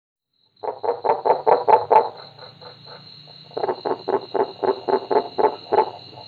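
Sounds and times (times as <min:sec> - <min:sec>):
Kuhl's creek frog Rana kuhlii calling in rapid clucking pulses: 0:00.6 - 0:06.2.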